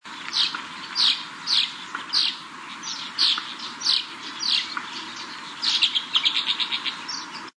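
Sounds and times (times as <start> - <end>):
brown-chested martin calling: 0.0 - 7.5.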